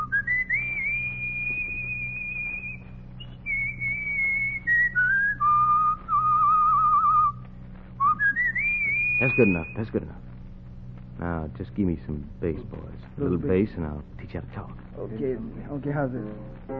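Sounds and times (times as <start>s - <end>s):
person whistling a frantic tune: 0.0s - 7.4s, 8.0s - 9.8s
low steady hum: 0.0s - 16.7s
speech: 9.2s - 10.2s, 11.4s - 16.7s.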